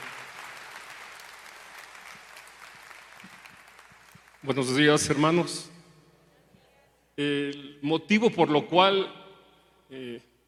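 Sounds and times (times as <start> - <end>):
congregation applauding during a church service: 0.0 - 5.4
speech: 4.4 - 5.7, 7.2 - 9.2.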